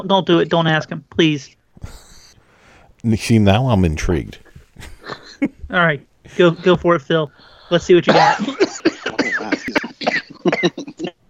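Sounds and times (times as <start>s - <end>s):
speech: 0.0s - 2.0s, 3.0s - 8.9s, 10.4s - 11.1s
person coughing: 8.1s - 11.2s.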